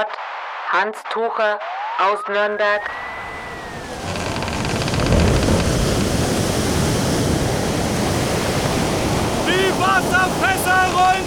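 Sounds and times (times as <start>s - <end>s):
speech: 0.0s - 3.1s
crashing surf in a storm at sea: 2.6s - 11.2s
storm wind at sea at force 9 to 11 aboard a ship: 2.8s - 11.2s.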